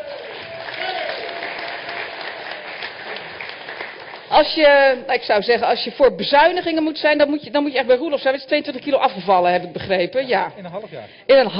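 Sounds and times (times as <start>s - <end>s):
audience applauding for a political candidate being introduced: 0.0s - 4.7s
speech: 4.4s - 11.5s.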